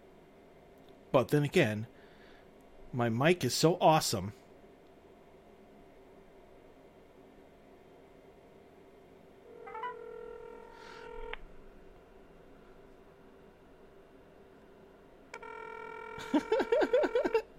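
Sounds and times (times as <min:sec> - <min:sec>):
speech: 0:01.1 - 0:01.9, 0:02.9 - 0:04.4
touch-tone dialing beeps on a speakerphone: 0:09.6 - 0:11.3
laughter: 0:16.2 - 0:17.5.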